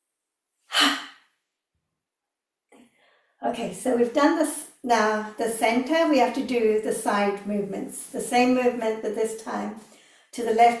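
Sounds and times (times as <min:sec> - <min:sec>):
forceful breathy exhale while rolling up during an exercise: 0:00.7 - 0:01.2
speech: 0:03.4 - 0:10.7.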